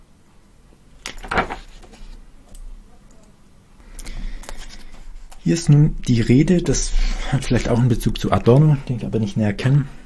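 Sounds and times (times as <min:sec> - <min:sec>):
pages being leafed through: 0:01.1 - 0:02.2
speech: 0:05.5 - 0:10.0.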